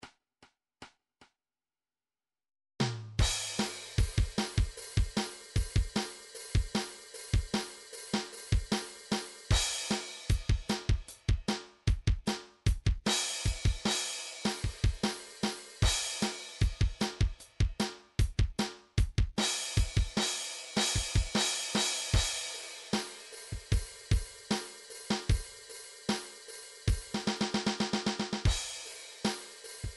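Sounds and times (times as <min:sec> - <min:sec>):
MIDI hard rock drum beat: 0:03.2 - 0:29.9
MIDI open hi-hat: 0:03.3 - 0:11.3, 0:13.1 - 0:17.9, 0:19.4 - 0:29.9.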